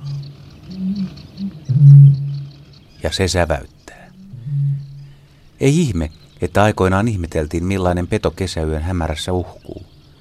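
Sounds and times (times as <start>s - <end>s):
Eurasian bittern booming foghorn-like call: 0.0s - 2.6s, 4.2s - 5.2s
speech: 3.0s - 3.8s, 5.6s - 9.9s.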